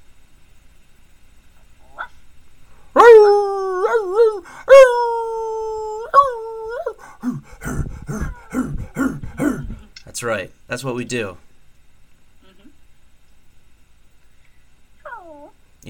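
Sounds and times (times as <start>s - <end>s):
dogs howling: 3.0s - 9.6s, 15.0s - 15.5s
speech: 10.2s - 11.5s.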